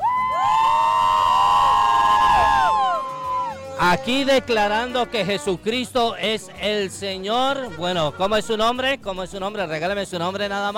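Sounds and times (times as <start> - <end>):
gathered crowd cheering with excited shouts and whoops: 0.0 - 4.1
speech: 3.9 - 10.7.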